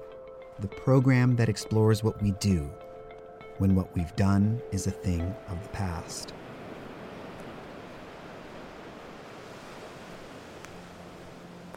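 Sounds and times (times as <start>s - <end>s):
speech: 0.6s - 2.8s, 3.6s - 6.4s
ocean surf washing ashore at a small seaside beach town in Jacksonville Florida: 3.5s - 11.7s.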